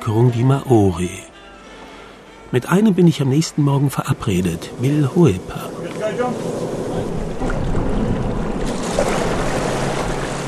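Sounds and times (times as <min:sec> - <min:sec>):
speech: 0:00.0 - 0:01.3, 0:02.5 - 0:07.2
water wash from a motorboat on a calm glassy gulf: 0:04.0 - 0:10.4
motorboat engine heading out fishing on the Hauraki Gulf: 0:04.1 - 0:10.4
wind noise: 0:04.6 - 0:10.4.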